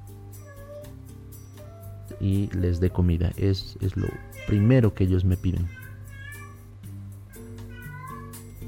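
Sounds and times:
cat meowing to be fed: 0.4 - 0.9, 4.0 - 5.0, 5.6 - 6.7, 7.3 - 8.6
speech: 2.2 - 5.8.

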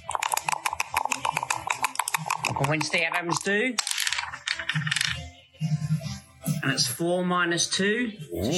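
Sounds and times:
dice rolled to predict a football score clattering across a hard surface: 0.2 - 5.2
speech: 2.6 - 3.9, 6.7 - 8.5.

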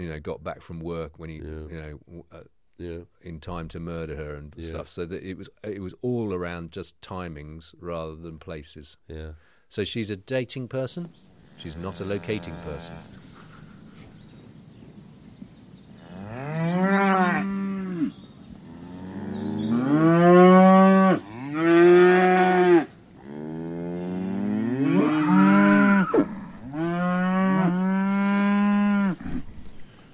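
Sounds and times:
speech: 0.0 - 13.3
cattle mooing: 11.6 - 13.2, 16.0 - 29.4.

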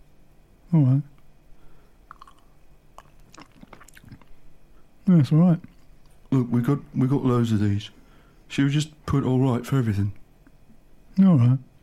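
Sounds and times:
speech: 0.7 - 1.1, 5.1 - 5.7, 6.3 - 10.2, 11.2 - 11.7
lip smacks: 2.0 - 4.4
person sipping and tasting pink wine: 2.1 - 4.3.

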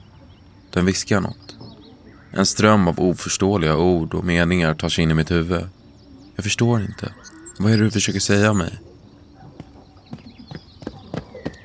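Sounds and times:
faint birdsong: 0.0 - 11.6
speech: 0.7 - 1.6, 2.3 - 5.8, 6.4 - 8.9
slow footsteps crunching over rough ground: 9.3 - 11.6.

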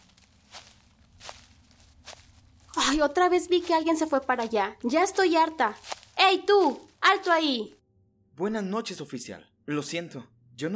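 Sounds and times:
soft footsteps of someone approaching: 0.0 - 7.8
speech: 2.9 - 7.8, 8.4 - 10.7.

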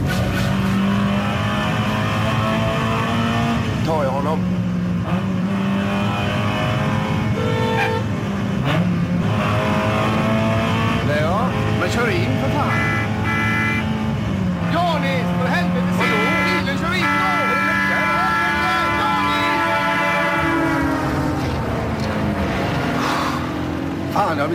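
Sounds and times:
car engine roaring in a car chase: 0.0 - 24.5
car horn blaring: 6.8 - 8.2, 12.5 - 14.0, 15.9 - 21.2
voices: 10.8 - 22.4.

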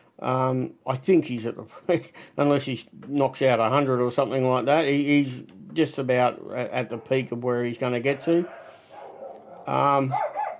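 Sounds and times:
speech: 0.2 - 8.6, 9.6 - 10.3
dog barking and yelping excitedly: 8.1 - 10.5.

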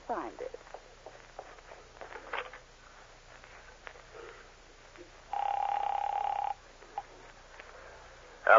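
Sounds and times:
telephone in the back of a store ringing as a call is placed: 5.3 - 6.6.

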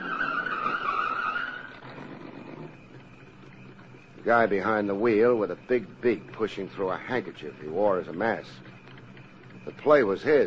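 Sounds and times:
car tires screeching while skidding to a stop: 0.0 - 2.8
road noise: 0.0 - 8.4
speech: 4.2 - 8.7, 9.6 - 10.4.

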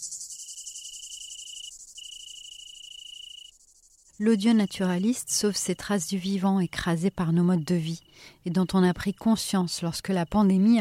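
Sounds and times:
dense continuous hiss of other insects: 0.0 - 4.2
Italian crickets trilling: 0.0 - 10.7
speech: 4.2 - 10.7.

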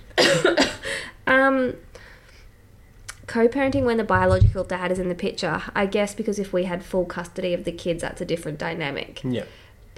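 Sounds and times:
person coughing with throat closing up: 0.2 - 1.0
speech: 1.5 - 1.9, 3.3 - 9.9.

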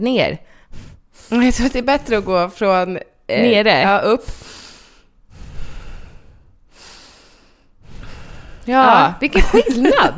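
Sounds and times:
speech: 0.0 - 4.6, 8.7 - 10.1
slow deep breaths in a square breathing exercise: 4.2 - 8.7
laughter: 9.3 - 10.1.

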